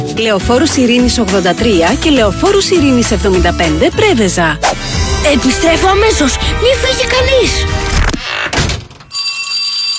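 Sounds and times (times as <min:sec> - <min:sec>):
speech: 0:00.2 - 0:08.0
electric school bell ringing for the first day of school: 0:09.1 - 0:09.9.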